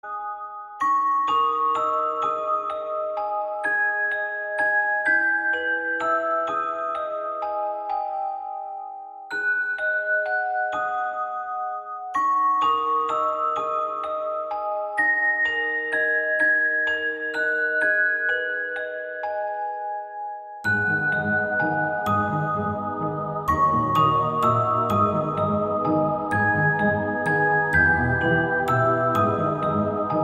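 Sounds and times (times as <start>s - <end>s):
crystal chimes ringtone: 0.0s - 30.2s.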